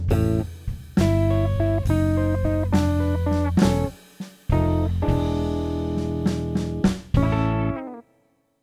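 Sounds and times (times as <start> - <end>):
Chicago blues guitar playing: 0.1 - 0.4, 1.0 - 4.0, 4.5 - 8.0.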